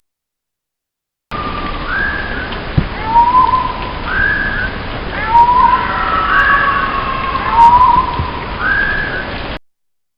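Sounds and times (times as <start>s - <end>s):
constant background hiss: 1.3s - 9.6s
Japanese tit Parus minor whistled song: 1.4s - 9.4s.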